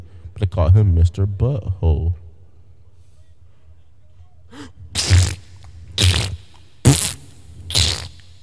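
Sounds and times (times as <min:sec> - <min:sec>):
speech: 0:00.4 - 0:02.2
wet blustery fart noises blown with the mouth: 0:04.9 - 0:08.4.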